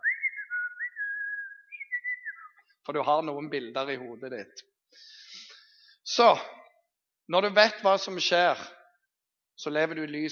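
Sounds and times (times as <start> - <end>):
person whistling a short clear melody: 0.0 - 2.6
speech: 2.9 - 5.2, 6.1 - 6.6, 7.3 - 8.8, 9.6 - 10.3.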